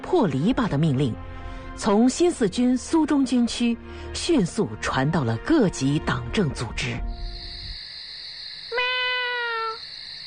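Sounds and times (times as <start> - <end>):
speech: 0.1 - 7.3
cat drawn-out meow call as a signal: 8.7 - 9.8.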